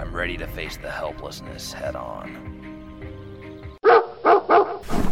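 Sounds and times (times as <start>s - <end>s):
speech: 0.2s - 2.6s
dog barking: 3.8s - 4.9s.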